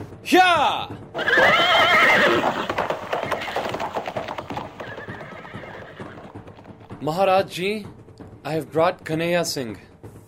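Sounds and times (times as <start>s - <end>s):
speech: 0.2s - 2.4s, 7.0s - 9.9s
horse neighing: 1.1s - 6.9s
horse hooves clip-clopping on a hard surface: 1.2s - 8.3s.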